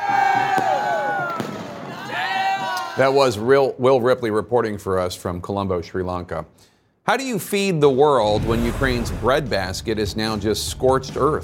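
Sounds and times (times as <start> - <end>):
firework bangs in Colombo Sri Lanka: 0.4 - 2.0, 8.3 - 9.9
speech: 3.0 - 11.4.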